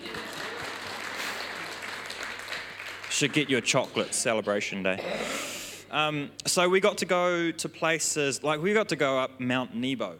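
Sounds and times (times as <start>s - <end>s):
audience applause: 0.0s - 4.1s
speech: 3.2s - 10.1s.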